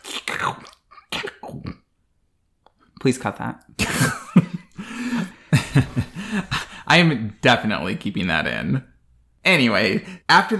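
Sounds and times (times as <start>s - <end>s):
person imitating slurping food off the ground with their mouth: 0.0s - 1.8s
speech: 0.4s - 0.8s, 3.0s - 4.2s, 5.8s - 10.5s
laughter: 3.8s - 6.8s.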